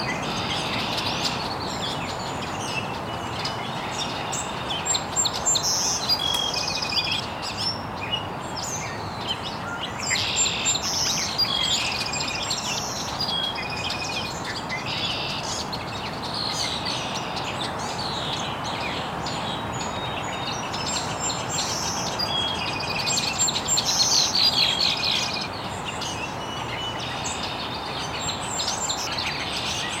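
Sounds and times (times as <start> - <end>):
many birds chirping in an estuary in the early morning: 0.0 - 29.9
soft hiss of open-air ambience: 0.0 - 29.9.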